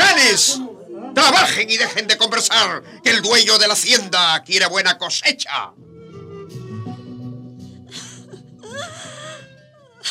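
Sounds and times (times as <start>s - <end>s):
speech: 1.3s - 5.9s
woman's breathy sobbing gasps: 7.6s - 10.0s
woman wailing and crying in long moans: 7.8s - 10.0s.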